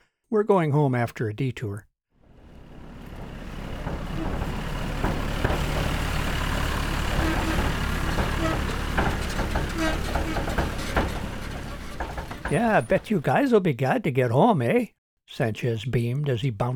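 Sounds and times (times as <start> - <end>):
speech: 0.3 - 1.9, 12.5 - 16.7
big truck engine droning down a deserted road: 2.2 - 13.4.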